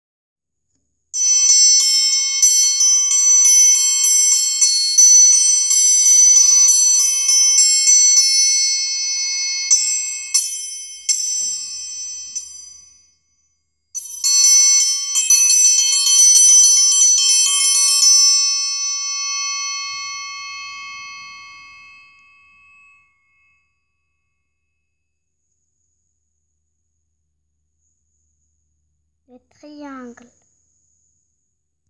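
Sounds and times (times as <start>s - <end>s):
triangle: 1.2s - 26.0s.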